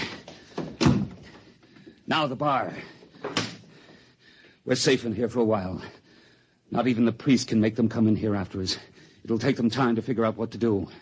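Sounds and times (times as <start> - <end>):
heavy door swinging shut with a deep resonant thud in a large room: 0.6 - 1.3
speech: 2.1 - 3.0, 4.7 - 6.0, 6.7 - 11.0.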